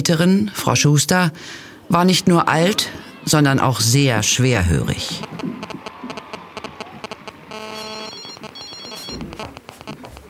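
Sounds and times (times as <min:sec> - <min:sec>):
speech: 0:00.0 - 0:05.5
busy noisy background: 0:01.4 - 0:10.2
telephone ringtone with bright repeating electronic tones: 0:05.2 - 0:10.2.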